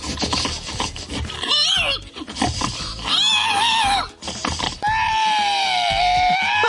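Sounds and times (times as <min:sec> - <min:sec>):
contestant imitating a pig with grunts and squeals at a pig-imitation competition in Estonia: 0:01.2 - 0:06.6.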